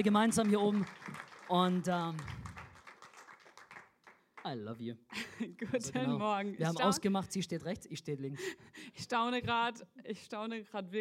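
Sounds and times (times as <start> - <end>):
speech: 0.0 - 2.4, 4.4 - 10.9
audience applause: 0.0 - 4.5
laughter: 5.1 - 6.2.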